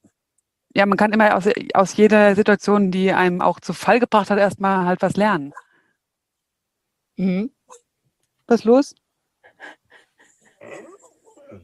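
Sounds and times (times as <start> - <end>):
speech: 0.8 - 5.6, 7.2 - 7.8, 8.5 - 9.0
dog whining: 10.6 - 11.6.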